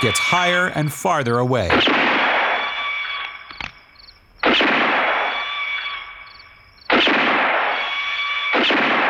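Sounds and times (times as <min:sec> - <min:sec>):
speech: 0:00.0 - 0:02.1
unusual-sounding pistol fired at a hat tossed into the air: 0:01.7 - 0:02.8, 0:04.4 - 0:05.7, 0:06.9 - 0:09.0.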